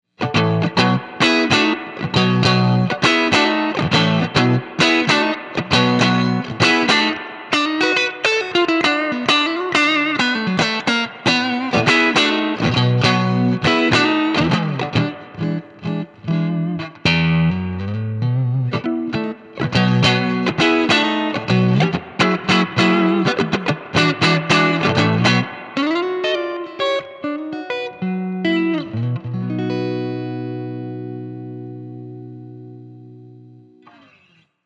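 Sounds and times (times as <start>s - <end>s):
6V6 blues in B: 0.1s - 34.4s.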